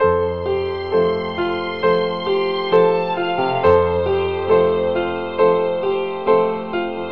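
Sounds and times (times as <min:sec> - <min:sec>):
sad piano loop: 0:00.0 - 0:07.1
sad strings loop: 0:00.0 - 0:07.1.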